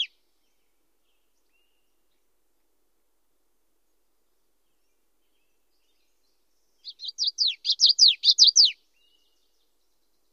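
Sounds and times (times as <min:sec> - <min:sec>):
common yellowthroat song in Western North America: 0:00.0 - 0:02.3, 0:04.6 - 0:10.3.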